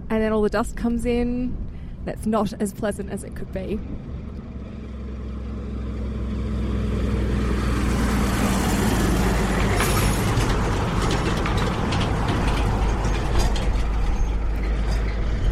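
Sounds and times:
speech: 0.1 - 4.1
three-carriage road train truck carrying ore passing on dirt beside a tarmac road: 3.8 - 15.5
rattling clattering mechanical noise of a road train: 9.3 - 15.5.

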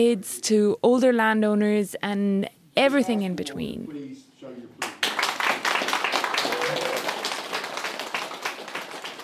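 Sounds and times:
speech: 0.0 - 4.3
crowd applauding at a community exhibition opening: 4.8 - 9.2.

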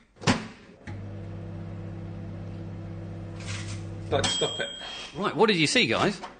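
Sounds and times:
microwave oven running with low electrical hum: 0.7 - 4.4
microwave oven start click: 0.8 - 4.1
speech: 4.1 - 6.3.

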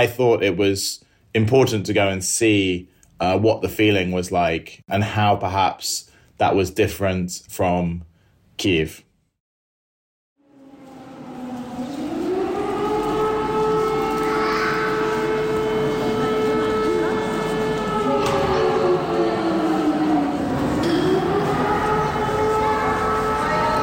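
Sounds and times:
speech: 0.0 - 9.1
air raid siren wailing in the train station in Vinnytsia: 10.4 - 23.8.

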